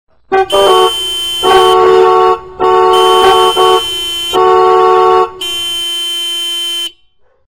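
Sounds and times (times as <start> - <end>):
car horns honking: 0.3 - 7.2.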